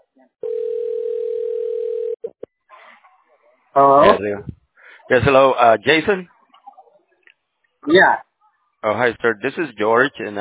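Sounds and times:
telephone dial tone before a call: 0:00.4 - 0:02.2
speech: 0:03.8 - 0:06.3, 0:07.8 - 0:10.3.

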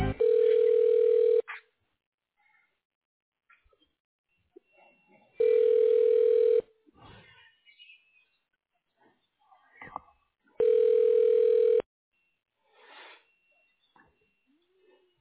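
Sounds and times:
telephone tone while a call is transferred: 0:00.2 - 0:01.4, 0:05.4 - 0:06.6, 0:10.6 - 0:11.8.

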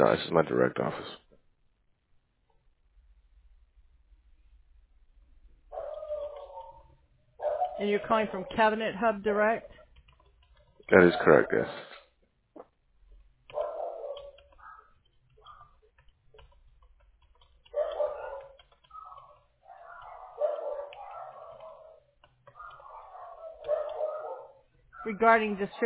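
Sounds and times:
speech: 0:00.0 - 0:01.2, 0:07.8 - 0:09.8, 0:10.9 - 0:11.9, 0:25.0 - 0:25.8
dogs yapping and whining: 0:05.7 - 0:08.4, 0:13.5 - 0:16.0, 0:17.6 - 0:25.2
dogs barking at a mail carrier heard over a phone call: 0:05.7 - 0:09.0, 0:10.8 - 0:12.1, 0:13.4 - 0:16.0, 0:17.4 - 0:25.8.

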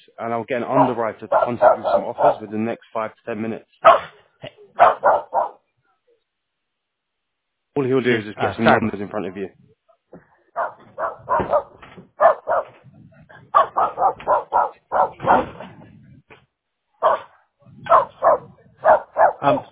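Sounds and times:
speech: 0:00.2 - 0:04.5, 0:07.8 - 0:09.8
dog barking: 0:00.7 - 0:02.5, 0:03.8 - 0:05.7, 0:10.5 - 0:15.7, 0:17.0 - 0:19.6.

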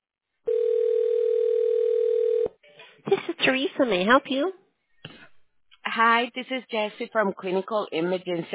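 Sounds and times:
telephone line tones during a call transfer: 0:00.5 - 0:02.5
speech: 0:03.5 - 0:04.6, 0:06.0 - 0:08.5.

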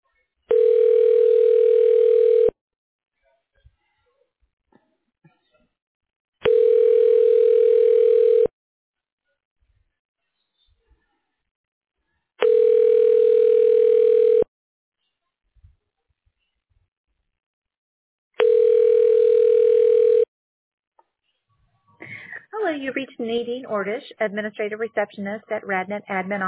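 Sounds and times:
telephone ringback tone during call transfer: 0:00.5 - 0:02.6, 0:06.4 - 0:08.5, 0:12.4 - 0:14.5, 0:18.4 - 0:20.3
speech: 0:22.8 - 0:26.4.

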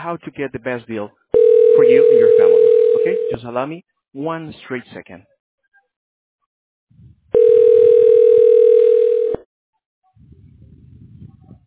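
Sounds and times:
speech: 0:00.0 - 0:05.3
telephone dial tone while a call is being dialed: 0:01.4 - 0:03.3, 0:07.4 - 0:09.4.

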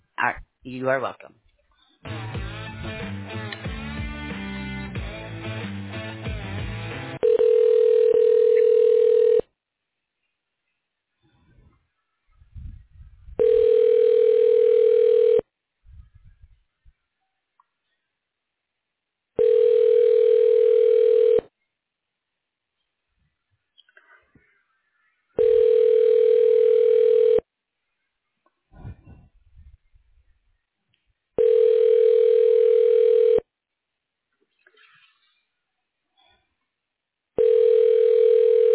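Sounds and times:
speech: 0:00.2 - 0:02.2
telephone hold music: 0:02.0 - 0:07.2
long steady telephone beeps as call is transferred to extension: 0:07.2 - 0:09.4, 0:13.4 - 0:15.4, 0:19.4 - 0:21.4, 0:25.4 - 0:27.4, 0:31.4 - 0:33.4, 0:37.4 - 0:38.7.

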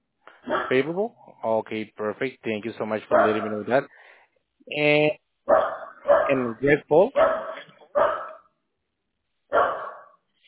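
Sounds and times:
dog barking: 0:00.4 - 0:00.9, 0:03.1 - 0:03.8, 0:05.5 - 0:06.6, 0:07.2 - 0:08.4, 0:09.5 - 0:10.2
speech: 0:00.7 - 0:04.0, 0:04.7 - 0:05.6, 0:06.3 - 0:07.4.

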